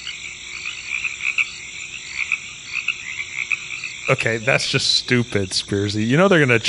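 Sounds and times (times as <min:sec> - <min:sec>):
chorus of crickets released in a room chirping: 0:00.0 - 0:06.6
speech: 0:04.1 - 0:06.6.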